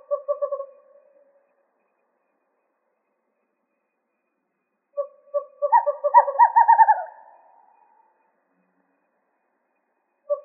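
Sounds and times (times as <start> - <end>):
western screech owl giving pulsed hoots in Arizona: 0.0 - 1.0, 5.0 - 8.1.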